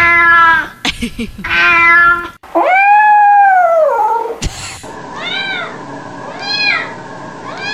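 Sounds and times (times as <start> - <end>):
several cats meowing and caterwauling in heat: 0.0 - 0.7, 1.4 - 4.4, 5.2 - 7.7.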